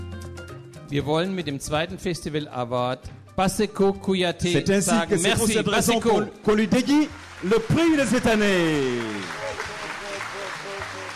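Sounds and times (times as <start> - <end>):
speech: 0.9 - 9.4
overlapping speech: 4.5 - 11.1
crowd applauding an award at an African music festival in southern Germany: 6.5 - 11.1.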